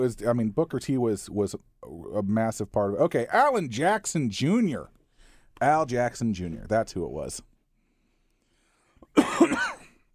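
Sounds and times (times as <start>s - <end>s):
speech: 0.0s - 5.0s, 5.6s - 7.5s
person coughing: 9.1s - 10.1s.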